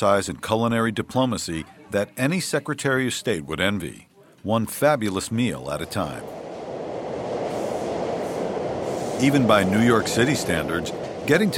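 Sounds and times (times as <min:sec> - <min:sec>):
speech: 0:00.0 - 0:06.4, 0:09.2 - 0:11.5
subway train rumbling along the tracks: 0:05.3 - 0:11.5.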